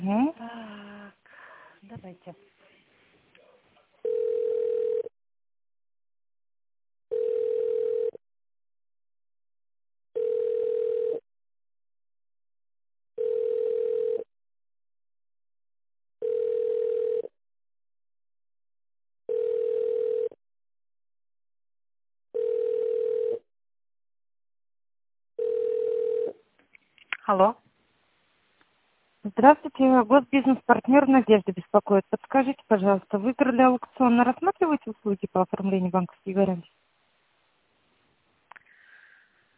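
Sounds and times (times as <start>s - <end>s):
speech: 2.0s - 2.7s, 27.3s - 27.6s, 29.3s - 36.8s
telephone ringback tone while a call is transferred: 4.0s - 5.1s, 7.1s - 8.2s, 10.2s - 11.2s, 13.2s - 14.3s, 16.2s - 17.3s, 19.3s - 20.4s, 22.3s - 23.4s, 25.4s - 26.4s.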